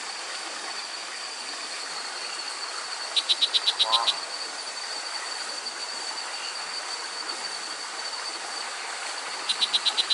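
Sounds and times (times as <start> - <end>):
high-pitched insect drone: 0.0 - 10.1
Assa darlingtoni pouched frog giving short sharp pulses: 3.2 - 4.3
speech: 3.3 - 4.3.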